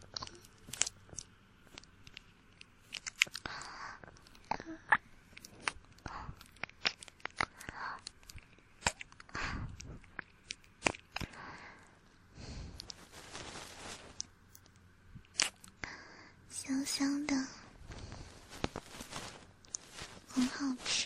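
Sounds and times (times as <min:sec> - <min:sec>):
ASMR biting and chewing mouth sounds: 0:00.0 - 0:13.0
soft whispery breathing: 0:03.4 - 0:06.6, 0:07.4 - 0:08.7, 0:09.3 - 0:10.1, 0:11.2 - 0:14.2, 0:15.8 - 0:21.0.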